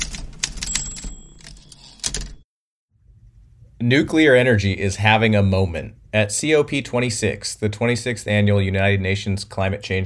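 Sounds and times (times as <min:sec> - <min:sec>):
mechanical typewriter keystrokes: 0:00.0 - 0:02.4
faint low rumble: 0:03.0 - 0:03.9
speech: 0:03.8 - 0:10.0.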